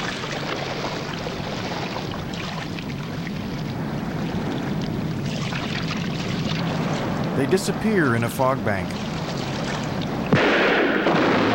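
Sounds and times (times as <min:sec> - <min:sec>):
oars splashing water around a small rowboat: 0:00.0 - 0:10.4
sea and wind rushing: 0:00.0 - 0:11.5
speech: 0:07.4 - 0:09.1
heavy boom of ship's gunfire: 0:10.3 - 0:11.5.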